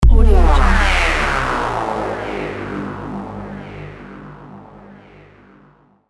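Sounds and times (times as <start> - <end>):
high tech kick: 0.0 - 3.2.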